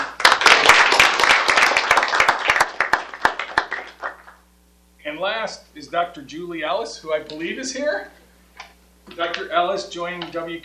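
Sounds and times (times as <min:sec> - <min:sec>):
crowd applauding: 0:00.0 - 0:04.4
speech: 0:05.2 - 0:08.2, 0:09.1 - 0:10.6.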